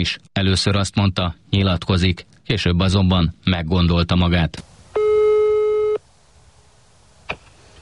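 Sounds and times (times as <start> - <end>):
speech: 0.0 - 4.7
quiet telephone line hiss: 0.0 - 7.8
telephone ringback tone of an outgoing call: 5.0 - 6.0.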